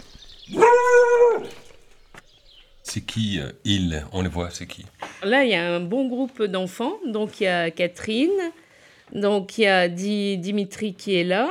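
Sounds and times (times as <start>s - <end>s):
dog giving a drawn-out howl-like bark at a house in Pargny-sur-Bois Aisne France: 0.5s - 1.6s
speech: 2.9s - 11.4s.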